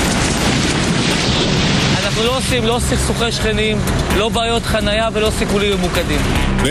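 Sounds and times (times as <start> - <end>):
demolition blast with rumbling roar of collapse: 0.0 - 4.3
speech: 2.2 - 6.6.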